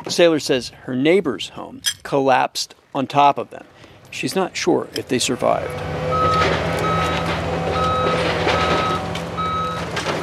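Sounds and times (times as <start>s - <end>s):
speech: 0.1s - 6.7s
backup beeps from small bobcat wheel loaders reversing: 6.1s - 10.2s.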